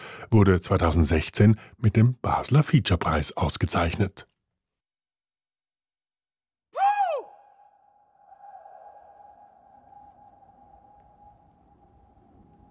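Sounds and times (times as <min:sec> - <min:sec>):
speech: 0:00.3 - 0:04.3
single pitch ringing with reverberation: 0:07.4 - 0:12.6.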